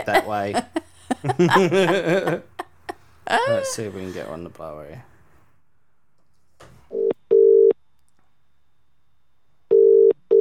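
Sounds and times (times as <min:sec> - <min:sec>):
speech: 0:00.0 - 0:02.5, 0:03.3 - 0:05.1
laughter: 0:00.0 - 0:04.4
telephone double-burst ringback tones: 0:09.7 - 0:10.3.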